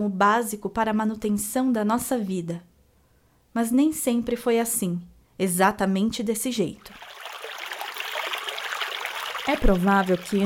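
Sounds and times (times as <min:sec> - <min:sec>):
speech: 0:00.0 - 0:02.7, 0:03.6 - 0:07.1, 0:09.5 - 0:10.4
flowing river water rushing, babbling and splashing: 0:06.9 - 0:10.4.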